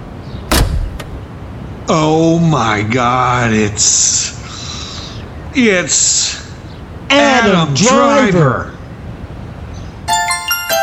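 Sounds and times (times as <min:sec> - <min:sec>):
low rumble: 0:00.0 - 0:10.0
limousine car door unlatching clunk: 0:00.5 - 0:01.3
speech: 0:01.9 - 0:04.4, 0:05.6 - 0:06.5, 0:07.1 - 0:08.8.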